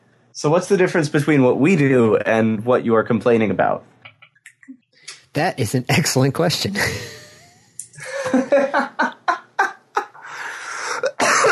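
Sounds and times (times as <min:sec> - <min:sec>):
speech: 0:00.4 - 0:03.9, 0:05.4 - 0:07.2
laughter: 0:06.7 - 0:11.5
person coughing: 0:10.9 - 0:11.5.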